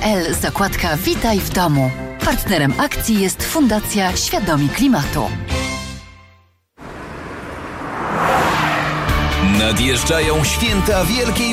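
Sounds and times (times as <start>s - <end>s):
speech: 0.0s - 5.6s, 9.6s - 11.5s
Honda HR-V 1.5 turbo engine humming: 6.8s - 11.5s.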